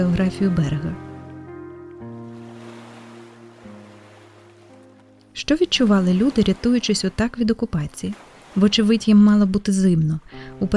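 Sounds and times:
speech: 0.0 - 1.1, 5.5 - 10.7
waves lapping against a boat's hull: 2.2 - 10.7.

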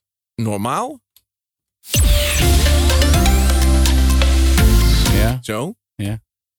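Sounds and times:
speech: 0.4 - 1.0, 5.2 - 6.2
bright layered synth chords: 1.9 - 5.4
radio jingle: 1.9 - 5.4
rising sweep: 1.9 - 5.4
deep sustained bass: 2.0 - 5.4.

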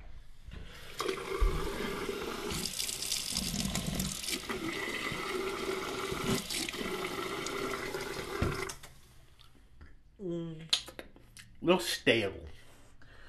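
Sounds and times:
water running from a hotel sink tap into a cup: 0.7 - 8.9
speech: 11.7 - 12.5.

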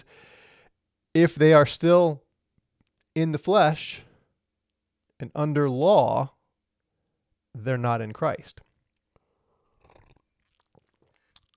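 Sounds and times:
speech: 1.2 - 2.2, 3.2 - 4.1, 5.2 - 6.4, 7.6 - 8.6
swallowing: 8.6 - 11.5
person sipping a drink: 8.7 - 11.5
wet mouth clicks: 9.0 - 11.5.

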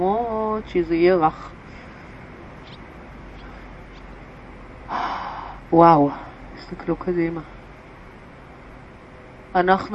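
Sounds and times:
speech: 0.0 - 1.6, 5.7 - 7.6, 9.5 - 9.9
deep breath taken in a guided exercise class on a mat: 4.9 - 6.4.

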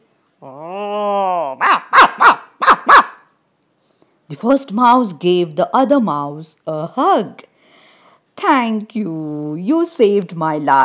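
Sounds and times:
speech: 0.4 - 0.7, 4.4 - 7.5, 8.4 - 10.8
dog whining: 0.4 - 3.2
dog barking: 1.6 - 3.3.

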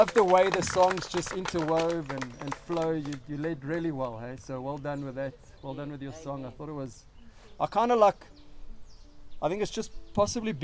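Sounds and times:
speech: 0.0 - 8.3, 9.4 - 10.6
faint birds chirping in a garden in the morning: 0.3 - 10.6.

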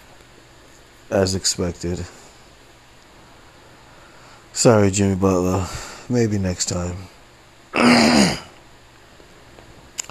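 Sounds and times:
speech: 1.1 - 2.2, 4.6 - 8.4
loud gravelly throat clearing: 7.8 - 8.5
faint click: 10.0 - 10.1.

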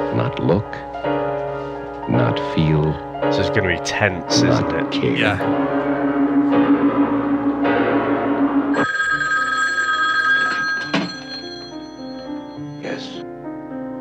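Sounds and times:
speech: 0.2 - 1.2, 2.1 - 6.8
sustained tonal sounds: 4.6 - 8.9
old-style telephone bell ringing: 8.7 - 13.2.

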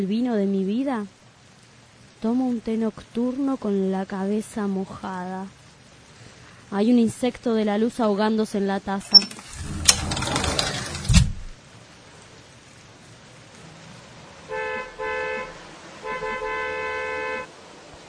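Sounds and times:
speech: 0.0 - 1.2, 2.2 - 5.6, 6.7 - 9.8
steady hiss: 0.0 - 18.0
car swishing past on a wet-sounding street: 12.0 - 18.0
car horn honking: 14.5 - 17.5.

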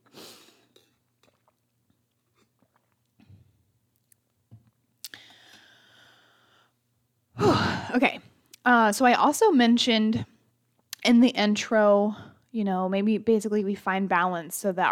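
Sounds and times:
person sipping water: 0.0 - 4.2
faint steady hum: 0.0 - 14.9
soft mouth clicks: 0.7 - 1.6, 5.0 - 5.4
airy slurp and swallow: 0.7 - 3.2
speech: 7.9 - 10.3, 11.1 - 14.9.

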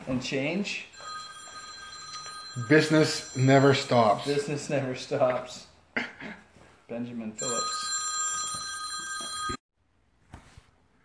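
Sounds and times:
speech: 0.1 - 1.1, 2.6 - 6.1, 6.9 - 7.6
telephone ringing with electronic trill: 1.0 - 4.6, 7.4 - 9.6.

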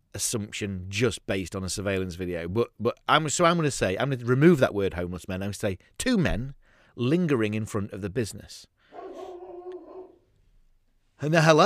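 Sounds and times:
speech: 0.2 - 8.7, 11.2 - 11.6
dog barking outside: 8.9 - 10.2.

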